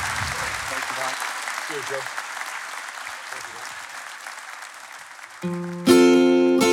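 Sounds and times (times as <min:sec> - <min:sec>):
audience applause: 0:00.0 - 0:06.6.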